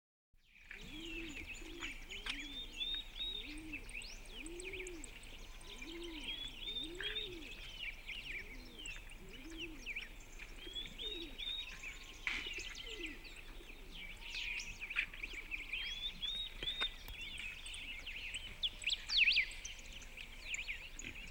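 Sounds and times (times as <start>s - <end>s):
countryside dawn ambience: 0.4s - 21.2s.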